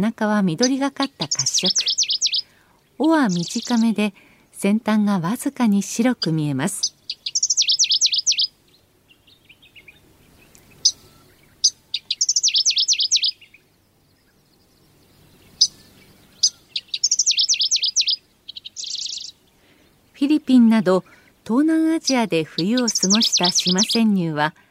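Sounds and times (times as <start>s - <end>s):
speech: 0.0s - 2.0s, 3.0s - 7.0s, 20.7s - 24.6s
Middendorff's grasshopper warbler singing in Hokkaido Japan: 0.0s - 24.6s
Middendorff's grasshopper warbler short chips: 0.6s - 2.5s, 3.2s - 4.0s, 6.8s - 8.5s, 9.7s - 13.5s, 15.5s - 19.4s, 22.6s - 24.0s.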